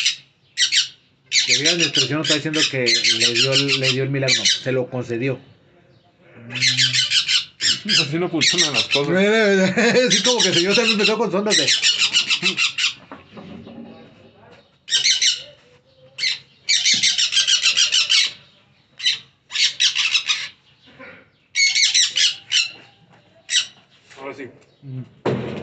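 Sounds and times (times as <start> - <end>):
parakeet squawking: 0.0 - 4.8, 6.5 - 13.1, 14.9 - 20.8, 21.5 - 22.9, 23.5 - 23.8
speech: 1.6 - 5.6, 7.8 - 13.0
laughter: 9.1 - 11.3, 12.0 - 12.8.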